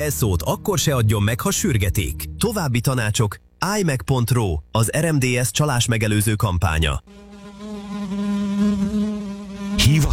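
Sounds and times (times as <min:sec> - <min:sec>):
speech: 0:00.0 - 0:07.2, 0:09.9 - 0:10.1
housefly buzzing while hovering: 0:07.0 - 0:10.1.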